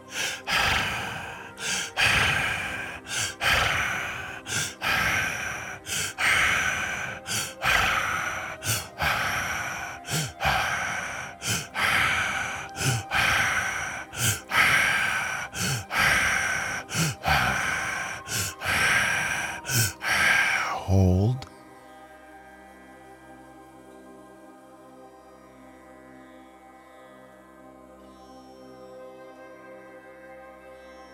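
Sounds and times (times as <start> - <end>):
deep breathing during a guided breathing exercise: 0.0 - 21.5.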